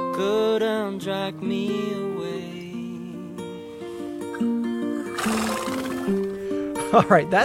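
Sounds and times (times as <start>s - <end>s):
speech: 0.2s - 2.5s, 6.9s - 7.4s
domesticated horse neighing outdoors: 5.0s - 6.4s.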